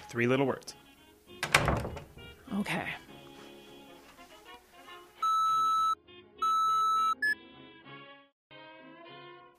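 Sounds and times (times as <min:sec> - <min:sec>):
speech: 0:00.1 - 0:00.8, 0:02.5 - 0:03.1
long loud electronic phone message beep tones: 0:05.2 - 0:07.3.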